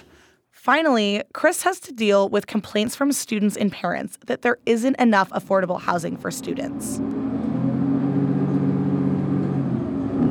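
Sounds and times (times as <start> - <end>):
speech: 0.7 - 7.3
city bus engine droning heard from inside in Berkeley: 6.2 - 10.2.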